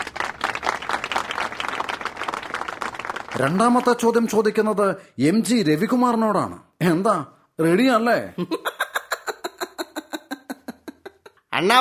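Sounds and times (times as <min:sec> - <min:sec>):
applause at a quiz event: 0:00.0 - 0:04.6
speech: 0:03.3 - 0:08.7, 0:11.6 - 0:11.8
laughter: 0:08.4 - 0:11.3.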